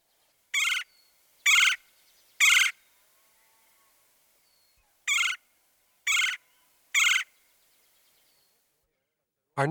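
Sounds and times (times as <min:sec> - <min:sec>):
lower trilled chirr of a red-bellied woodpecker: 0:00.5 - 0:02.8, 0:05.1 - 0:05.4, 0:06.1 - 0:07.4
raspy high-pitched call of a red-headed woodpecker: 0:00.5 - 0:02.8, 0:05.1 - 0:07.4.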